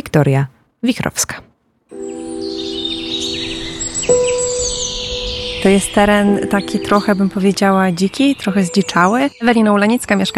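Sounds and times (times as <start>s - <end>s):
speech: 0.2s - 1.4s, 5.6s - 10.3s
sustained tone: 1.9s - 9.8s
birds chirping and twittering in a wild overgrown urban green area in Warsaw: 1.9s - 10.3s.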